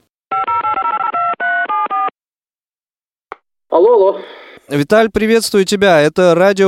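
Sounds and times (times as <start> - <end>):
telephone keypad dialing tones dialing a call to Volgodonsk: 0.3 - 2.1
speech: 3.8 - 6.6.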